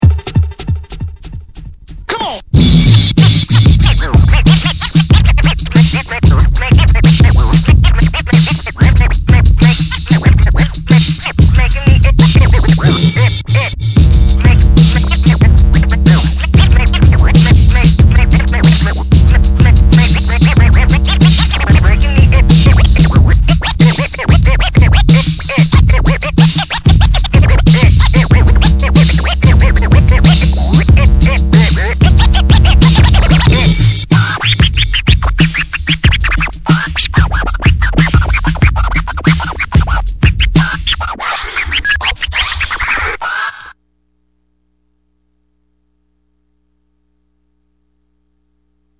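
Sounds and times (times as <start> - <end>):
scratching: 0.0 - 43.7.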